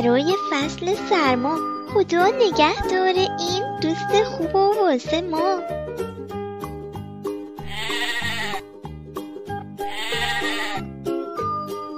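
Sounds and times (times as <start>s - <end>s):
speech: 0.0s - 5.8s
bouncy rhythmic musical backing: 0.0s - 11.9s
sheep bleating: 7.6s - 8.6s, 9.8s - 10.9s.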